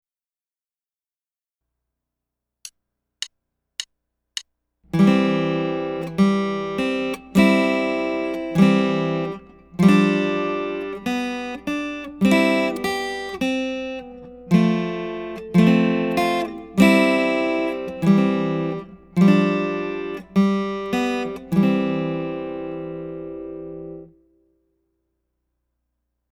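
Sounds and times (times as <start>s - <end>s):
chord progression: 5.0s - 24.2s.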